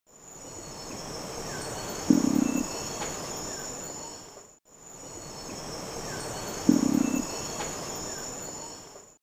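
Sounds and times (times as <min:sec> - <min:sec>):
insects hissing: 0:00.1 - 0:09.1
forest background noise: 0:00.1 - 0:09.2
long-wattled umbrellabird deep humming boom: 0:01.5 - 0:03.6, 0:06.1 - 0:08.0.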